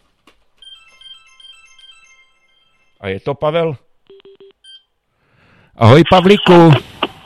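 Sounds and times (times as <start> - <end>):
phone ringtone with repeating electronic melody: 0.6 - 3.1, 4.1 - 4.9
speech: 3.0 - 3.8, 5.8 - 6.9.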